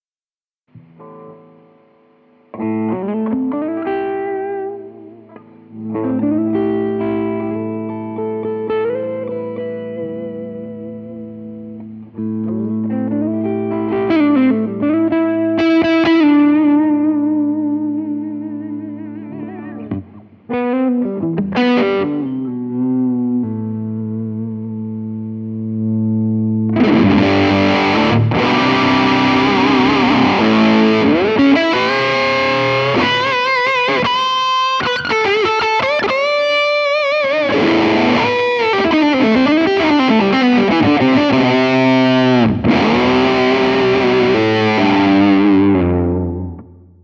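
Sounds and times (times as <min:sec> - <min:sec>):
fuzz guitar solo through a 1x12 cabinet: 0:00.8 - 0:47.0.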